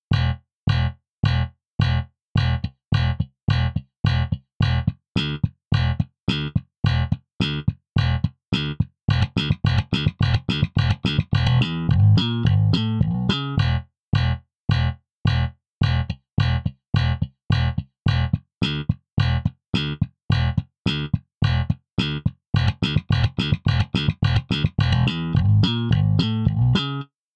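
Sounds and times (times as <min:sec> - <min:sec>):
slap bass guitar on default setting: 0:00.1 - 0:27.1.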